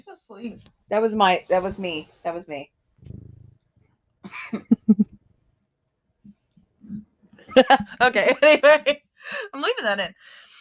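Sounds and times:
speech: 0:00.0 - 0:02.8, 0:04.3 - 0:05.2, 0:07.5 - 0:10.5
cat purring: 0:03.0 - 0:03.9.

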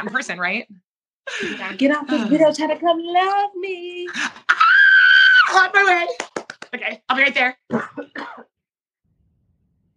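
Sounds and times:
speech: 0:00.0 - 0:04.5, 0:05.5 - 0:08.5
short cough: 0:07.7 - 0:08.6.

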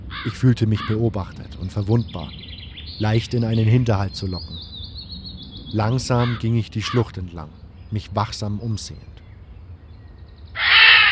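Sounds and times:
raven cawing: 0:00.0 - 0:01.1, 0:04.6 - 0:07.9, 0:10.5 - 0:11.0
faint low rumble: 0:00.0 - 0:10.6
speech: 0:00.2 - 0:02.4, 0:03.0 - 0:04.7, 0:05.7 - 0:09.1.

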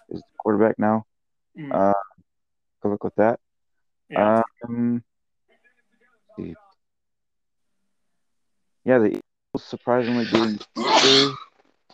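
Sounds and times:
speech: 0:00.1 - 0:02.1, 0:02.8 - 0:03.4, 0:04.1 - 0:05.1, 0:06.4 - 0:06.6, 0:08.8 - 0:11.5
sneeze: 0:10.1 - 0:11.5.

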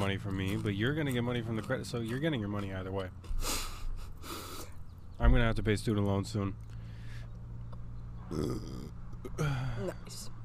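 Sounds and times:
speech: 0:00.0 - 0:03.6, 0:05.2 - 0:06.7, 0:08.3 - 0:10.4
low rumbling burp: 0:08.2 - 0:09.6.

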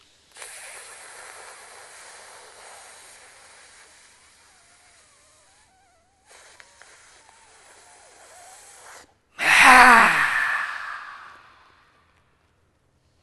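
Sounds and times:
deep breaths drawn in through the nose during a guided breathing exercise: 0:09.4 - 0:11.7.

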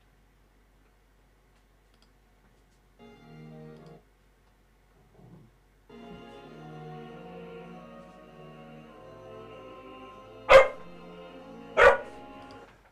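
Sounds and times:
quiet sung classical music: 0:03.0 - 0:04.0, 0:05.9 - 0:12.8
dog barking: 0:10.5 - 0:10.9, 0:11.8 - 0:12.2.

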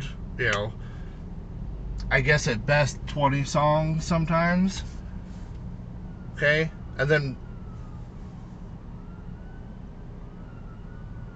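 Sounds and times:
traffic and street noise: 0:00.0 - 0:11.3
speech: 0:00.4 - 0:00.8, 0:02.1 - 0:05.0, 0:06.4 - 0:07.4
emergency vehicle siren: 0:02.8 - 0:11.3.

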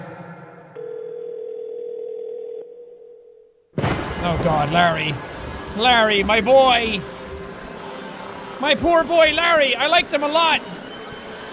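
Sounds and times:
telephone ringback tone: 0:00.8 - 0:03.4
speech: 0:04.2 - 0:07.1, 0:08.6 - 0:10.7.

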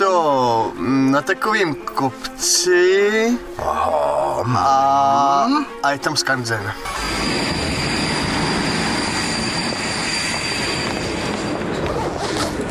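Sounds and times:
speech: 0:01.2 - 0:07.5
thin high whine of train brakes or wheels: 0:06.8 - 0:12.6
train rumbling as it pulls into a station: 0:06.8 - 0:12.6.

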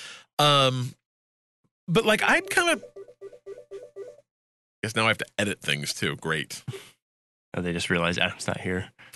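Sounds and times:
speech: 0:00.4 - 0:01.0, 0:01.9 - 0:02.9, 0:04.8 - 0:06.9, 0:07.6 - 0:09.1
telephone ringing with short electronic chirps: 0:02.5 - 0:04.2.

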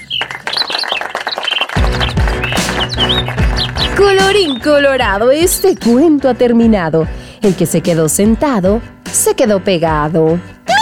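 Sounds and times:
birds chirping and whistling: 0:00.0 - 0:06.6
speech: 0:04.0 - 0:10.5.

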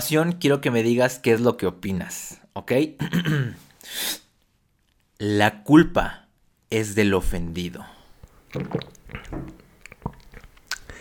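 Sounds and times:
speech: 0:00.0 - 0:04.2, 0:05.2 - 0:09.6
person sipping and gulping water: 0:08.1 - 0:10.9
soft mouth clicks: 0:08.2 - 0:10.9.

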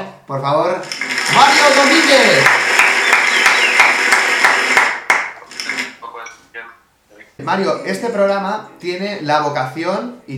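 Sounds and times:
speech: 0:00.3 - 0:02.6, 0:07.4 - 0:10.3
crowd applauding to welcome a speaker: 0:01.0 - 0:05.4.

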